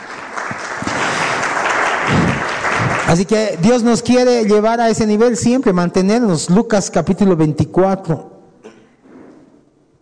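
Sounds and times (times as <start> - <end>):
audience applauding during a sermon: 0.0 - 3.8
speech: 3.1 - 8.3.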